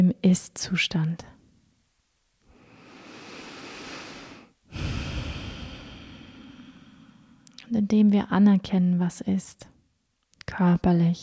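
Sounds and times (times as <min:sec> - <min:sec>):
speech: 0:00.1 - 0:01.3, 0:07.7 - 0:09.7, 0:10.5 - 0:11.2
slow breathing during a guided meditation: 0:02.5 - 0:07.5.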